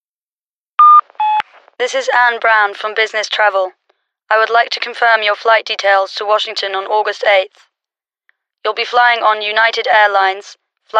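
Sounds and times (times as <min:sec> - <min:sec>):
answering machine beep: 0:00.8 - 0:01.4
speech: 0:01.8 - 0:07.7, 0:08.6 - 0:10.9.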